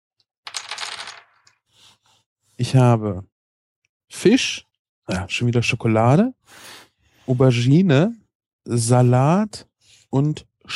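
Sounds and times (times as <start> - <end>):
dice rolling across a hard tabletop: 0.4 - 1.6
speech: 2.6 - 3.3, 4.1 - 10.7.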